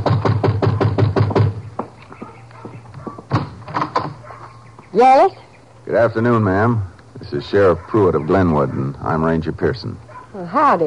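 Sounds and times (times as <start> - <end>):
knocking on a wooden door: 0.0 - 4.2
speech: 5.0 - 10.8.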